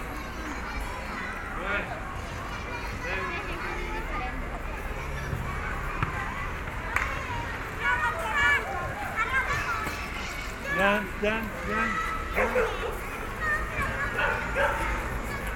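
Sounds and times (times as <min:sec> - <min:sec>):
children chattering and shouting in a playground in Barcelona: 0:00.0 - 0:15.5
low hum of the surroundings: 0:00.0 - 0:15.5
dog barking: 0:12.4 - 0:13.0, 0:14.2 - 0:14.9.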